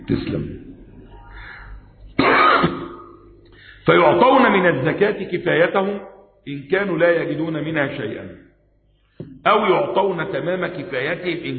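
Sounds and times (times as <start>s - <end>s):
speech: 0.1s - 0.7s, 3.9s - 8.5s, 9.2s - 11.5s
harsh cough after drinking lemon: 2.2s - 3.2s.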